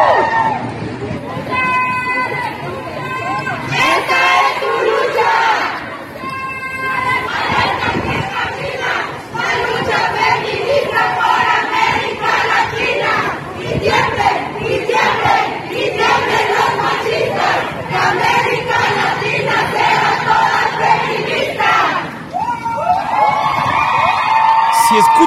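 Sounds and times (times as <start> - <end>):
protest marchers whooping: 0.0 - 0.7, 22.3 - 25.2
large crowd of women marching in the streets of Mexico chanting slogans: 2.2 - 22.3.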